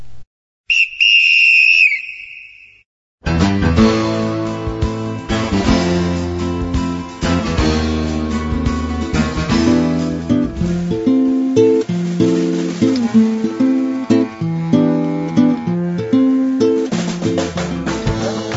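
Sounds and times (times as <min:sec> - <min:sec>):
shrill referee's whistle blast trilling slightly: 0:00.7 - 0:02.8
loud music: 0:03.3 - 0:18.5.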